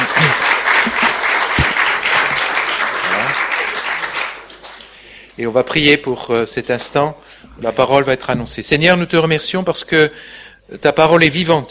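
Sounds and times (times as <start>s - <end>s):
church congregation applauding a preacher: 0.0s - 5.1s
speech: 5.4s - 11.6s.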